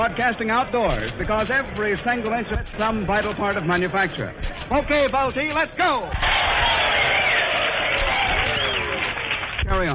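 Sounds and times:
speech: 0:00.0 - 0:06.8, 0:09.7 - 0:09.9
large crowd of factory employees roaring and cheering outdoors: 0:06.0 - 0:09.9.

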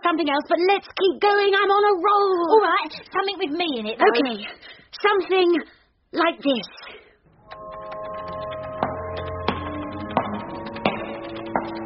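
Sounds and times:
speech: 0:00.1 - 0:06.9
footsteps: 0:07.3 - 0:11.8
low hum: 0:07.3 - 0:11.8.

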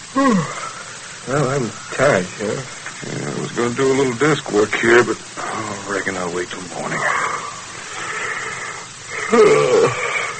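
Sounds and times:
person yawning with a wavering vocal groan: 0:00.0 - 0:00.9, 0:07.0 - 0:10.3
speech: 0:00.1 - 0:00.6, 0:01.2 - 0:07.2, 0:09.3 - 0:10.0.

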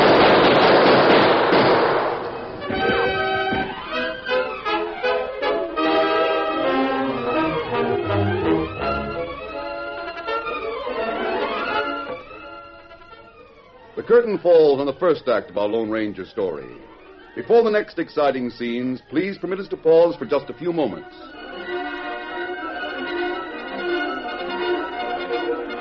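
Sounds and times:
loud rapid burst of gunfire: 0:00.0 - 0:03.3
sweeping orchestral music passage: 0:02.3 - 0:25.8
speech: 0:14.1 - 0:21.4.

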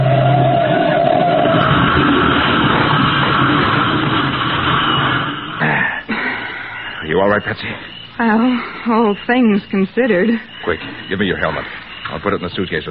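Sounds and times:
car engine roaring with a rough rumble: 0:00.0 - 0:05.8
speech: 0:07.4 - 0:12.8.

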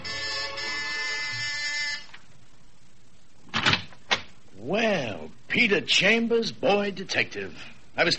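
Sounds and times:
door buzzer: 0:00.0 - 0:02.2
speech: 0:05.5 - 0:08.1.

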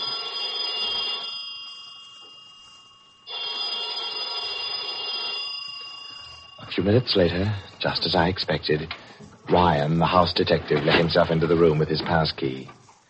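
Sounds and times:
old-style telephone bell ringing: 0:00.0 - 0:09.2
speech: 0:06.7 - 0:12.8.

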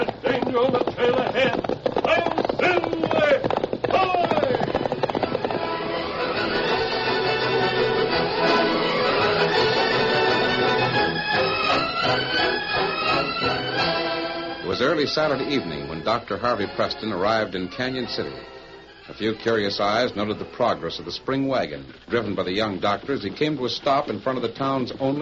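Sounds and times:
thundering hoofbeats of a galloping horse: 0:00.0 - 0:25.2
speech: 0:00.5 - 0:01.5, 0:15.0 - 0:25.2
loud sweeping orchestral music: 0:05.3 - 0:20.8.

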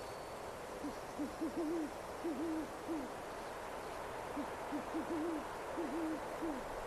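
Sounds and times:
steady hiss: 0:00.0 - 0:06.8
owl hooting in dark woods: 0:00.8 - 0:03.2, 0:04.4 - 0:06.7.

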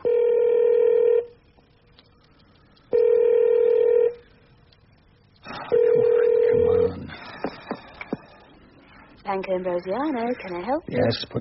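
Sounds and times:
telephone ringing in steady electronic bursts: 0:00.0 - 0:01.3, 0:02.9 - 0:04.2, 0:05.7 - 0:07.0
speech: 0:09.4 - 0:11.3.

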